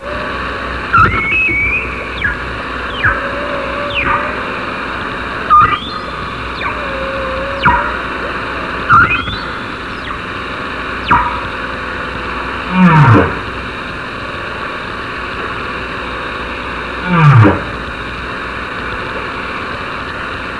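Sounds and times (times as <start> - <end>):
humpback whale: 0.0 - 13.6, 17.0 - 17.9
ocean noise: 0.0 - 14.5.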